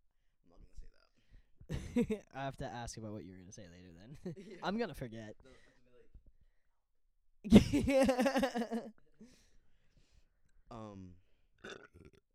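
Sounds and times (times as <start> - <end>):
speech: 1.7 - 5.8, 7.4 - 9.4, 10.7 - 12.2
laughter: 7.5 - 8.9
loud drawn-out burp: 11.6 - 12.2.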